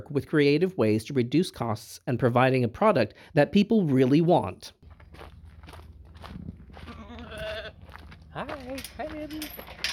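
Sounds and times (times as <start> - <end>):
speech: 0.0 - 5.3, 8.4 - 9.9
market lambs bleating on a hobby farm: 6.9 - 7.8.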